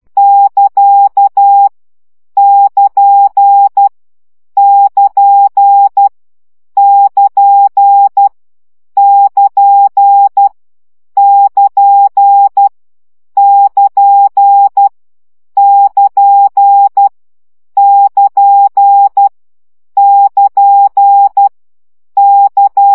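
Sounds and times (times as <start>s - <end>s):
Morse code practice opening at 10 baud: 0.2s - 1.7s, 2.4s - 3.9s, 4.6s - 6.1s, 6.8s - 8.3s, 9.0s - 10.5s, 11.2s - 12.7s, 13.4s - 14.9s, 15.6s - 17.1s, 17.8s - 19.3s, 20.0s - 21.5s, 22.2s - 22.9s.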